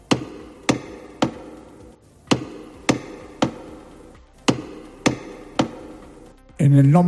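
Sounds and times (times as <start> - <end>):
loud sharp ceremonial knocks on the heavy Door of Forgiveness of a monastery: 0.0 - 6.2
speech: 6.6 - 7.0.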